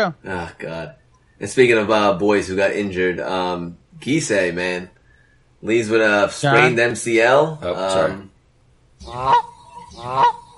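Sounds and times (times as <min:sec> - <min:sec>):
speech: 0:00.0 - 0:05.0, 0:05.6 - 0:08.3, 0:09.0 - 0:10.4
goose honks: 0:09.0 - 0:10.5.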